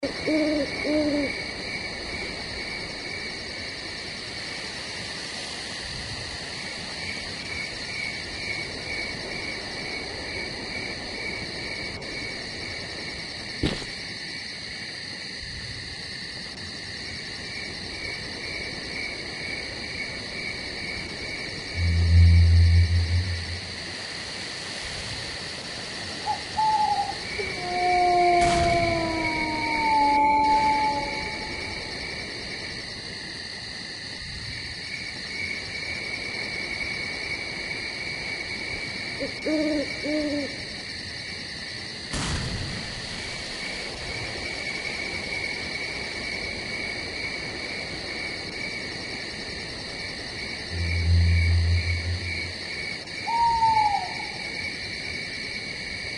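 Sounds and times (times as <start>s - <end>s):
night ambience: 0.0s - 56.1s.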